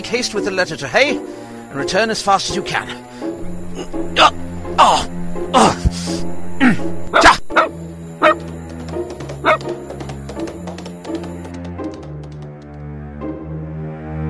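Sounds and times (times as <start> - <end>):
speech: 0.1 - 7.4
dog barking with sharp yips: 7.1 - 8.4, 9.4 - 9.7.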